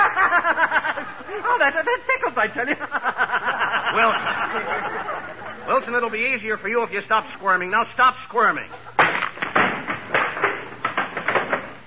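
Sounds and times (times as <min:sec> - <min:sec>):
laughter: 0:00.0 - 0:06.5, 0:08.6 - 0:09.1
speech: 0:01.6 - 0:03.1, 0:04.0 - 0:08.9
wooden chair breaking apart: 0:09.0 - 0:11.8.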